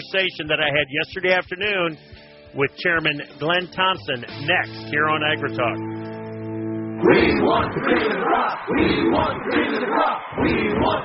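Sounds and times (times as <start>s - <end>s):
speech: 0.1s - 6.0s, 7.0s - 11.0s
sustained tone: 5.4s - 9.7s
large stadium crowd chanting in unison: 7.0s - 11.0s.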